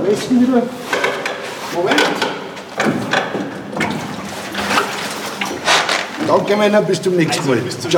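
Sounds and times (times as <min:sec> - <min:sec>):
speech: 0:00.1 - 0:01.0, 0:01.7 - 0:02.2, 0:06.3 - 0:07.9
water sloshing as a water taxi docks on the flooded Danube: 0:00.6 - 0:07.9
water taxi bumping at a hotel dock: 0:01.9 - 0:07.9.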